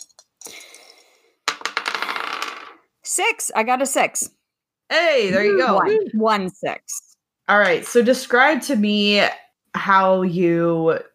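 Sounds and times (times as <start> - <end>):
two six-sided dice rolled for a tabletop game clattering against a hard surface: 0.0 - 2.8
speech: 3.2 - 11.1.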